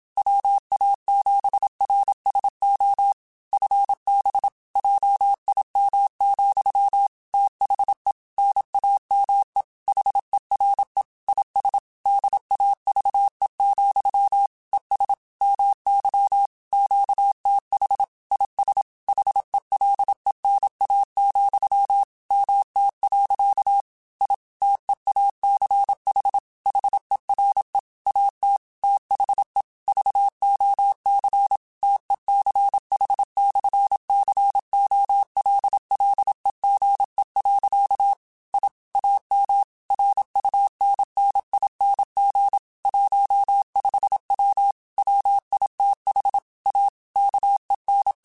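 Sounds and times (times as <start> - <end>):
Morse code CW code groups on ham radio: 0.4 - 23.6, 24.2 - 28.4, 28.9 - 31.6, 32.3 - 46.4, 47.2 - 48.2.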